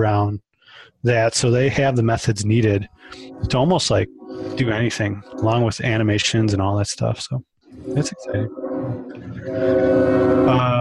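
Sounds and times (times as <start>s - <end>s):
speech: 0.0s - 10.7s
train horn blaring: 2.6s - 6.8s, 7.8s - 10.7s.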